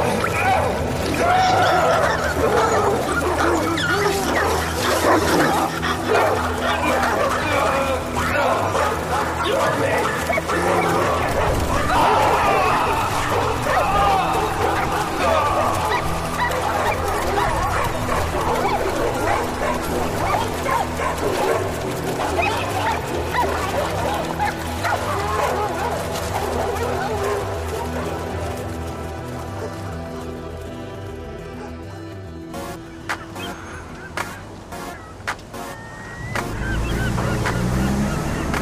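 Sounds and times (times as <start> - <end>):
dogs snarling: 0.0 - 30.3
several dogs barking and yelping frantically: 0.0 - 30.6, 32.6 - 38.6
laughter: 0.0 - 38.6.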